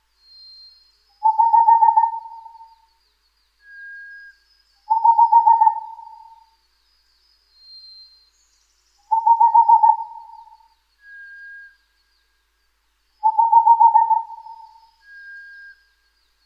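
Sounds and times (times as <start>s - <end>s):
faint thin whistle: 0.2s - 3.0s, 3.6s - 12.4s, 14.1s - 16.4s
Boreal Owl singing trills of hoots: 1.2s - 2.8s, 4.9s - 6.6s, 9.1s - 10.8s, 13.2s - 15.7s.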